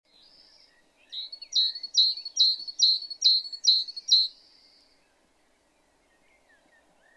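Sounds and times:
great tit Parus major calling with sharp high chirping notes: 0.1s - 4.4s.

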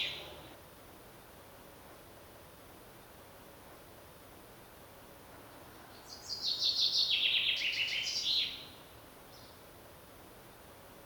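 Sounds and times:
common chaffinch Fringilla coelebs song: 0.0s - 0.6s, 6.0s - 9.6s.

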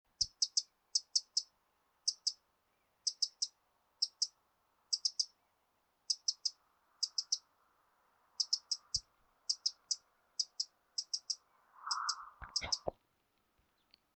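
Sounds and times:
Eurasian wren Troglodytes troglodytes giving dry hard ticking calls: 0.1s - 5.4s, 6.0s - 7.6s, 8.2s - 12.9s
faint hum: 5.4s - 12.9s.

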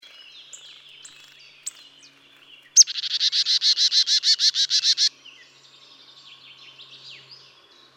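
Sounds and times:
marsh tit calling: 0.5s - 5.1s.

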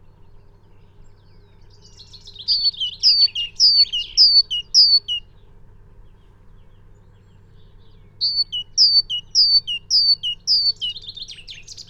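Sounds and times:
great tit song: 1.7s - 5.3s, 7.4s - 11.8s.

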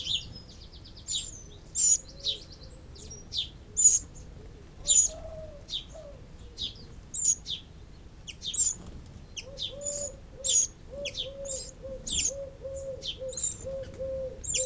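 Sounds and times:
Eurasian wren calling, Troglodytes troglodytes: 1.0s - 2.6s, 3.3s - 4.2s, 4.9s - 5.9s, 6.6s - 7.6s, 8.3s - 8.8s, 9.4s - 14.6s.

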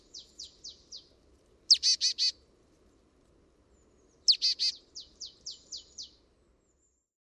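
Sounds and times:
marsh tit Poecile palustris calls: 1.7s - 2.3s, 4.3s - 5.8s.

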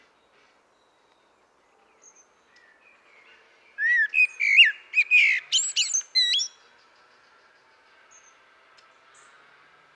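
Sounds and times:
Turdus merula common blackbird warbling whistles: 3.8s - 6.5s.

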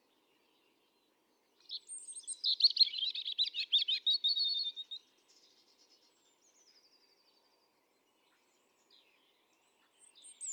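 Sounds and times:
European robin singing: 1.8s - 5.0s.

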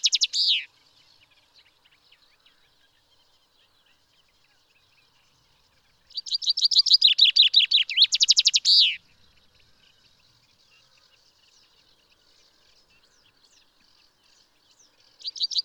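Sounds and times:
common chaffinch Fringilla coelebs song: 0.0s - 15.6s.

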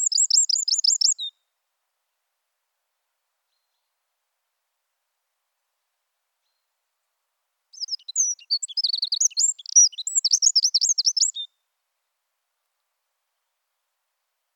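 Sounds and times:
Eurasian wren Troglodytes troglodytes song high trill: 0.0s - 1.3s, 7.8s - 11.5s.

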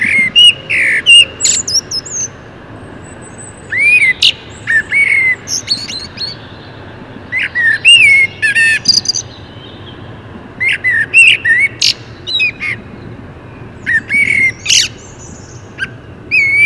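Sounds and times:
common blackbird Turdus merula singing: 0.0s - 16.6s.

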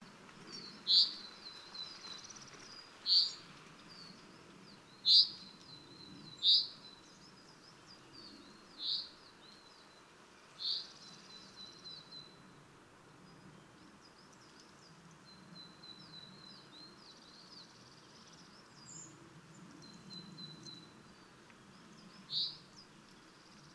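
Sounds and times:
low background noise: 0.0s - 23.7s
common chaffinch Fringilla coelebs calling: 0.6s - 1.3s, 3.1s - 3.4s, 5.0s - 5.4s, 6.4s - 6.8s, 10.6s - 11.5s.

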